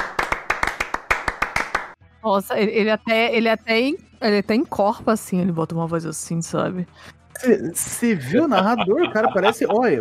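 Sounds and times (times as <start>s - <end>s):
hands clapping in a round of applause: 0.0s - 2.0s
speech: 2.2s - 9.9s
laughter: 8.1s - 9.9s.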